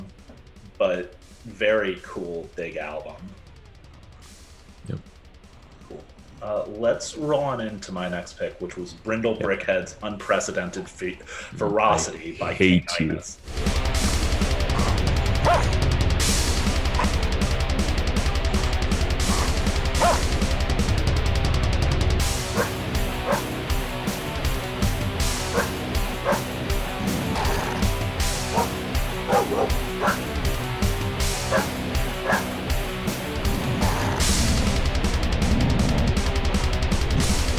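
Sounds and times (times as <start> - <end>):
hardcore-style heavy metal with pounding drums and distorted guitars: 0.0 - 37.5
speech: 0.8 - 3.4, 6.4 - 13.6
dog barks and yips as metal vocals: 14.8 - 15.7, 17.0 - 17.2, 19.3 - 20.3, 22.5 - 23.5, 25.5 - 26.5, 28.4 - 30.3, 31.5 - 32.5.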